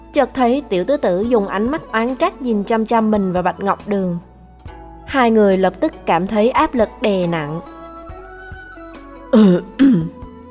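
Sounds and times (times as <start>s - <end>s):
speech: 0.2s - 4.3s, 5.1s - 7.8s, 9.3s - 10.2s
throat-clearing coughs: 9.4s - 10.2s.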